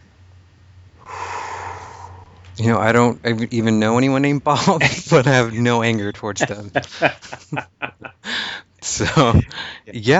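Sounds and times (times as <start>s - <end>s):
deep breath during an emotional freedom tapping session: 1.0s - 2.6s, 8.2s - 8.8s, 9.5s - 9.9s
speech: 2.6s - 8.1s, 8.9s - 10.1s
laughter: 4.6s - 10.1s.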